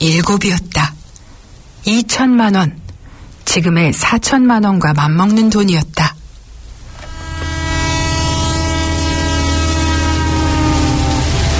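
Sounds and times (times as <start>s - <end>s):
speech: 0.0s - 0.9s, 1.8s - 2.8s, 3.6s - 6.0s
train rumbling: 6.4s - 11.5s.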